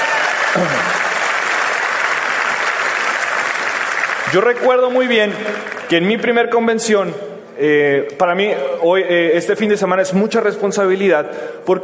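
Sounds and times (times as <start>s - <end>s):
crowd applauding: 0.0s - 6.0s
speech: 0.6s - 1.0s, 4.3s - 11.8s.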